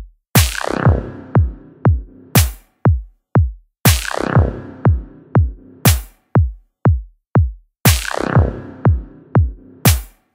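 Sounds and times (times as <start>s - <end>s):
psy trance music: 0.4s - 2.6s, 3.9s - 6.2s, 7.9s - 10.2s.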